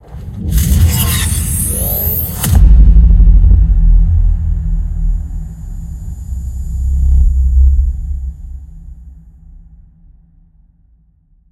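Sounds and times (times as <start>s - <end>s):
cinematic risers: 0.0s - 9.2s.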